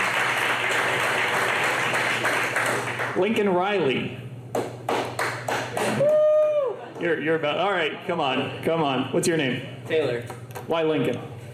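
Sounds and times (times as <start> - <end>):
audience clapping and applauding at a football talk event: 0.0 - 3.4, 4.5 - 6.2
speech: 3.2 - 4.7, 7.0 - 11.3.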